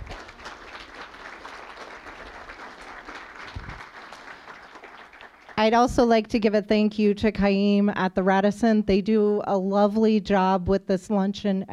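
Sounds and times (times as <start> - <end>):
room full of people applauding: 0.0 - 5.8
speech: 5.6 - 11.7.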